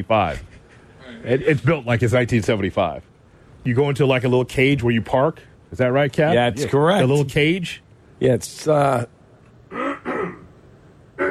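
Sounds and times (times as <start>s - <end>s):
speech: 0.0s - 9.2s
gravelly throat clearing: 9.7s - 10.5s.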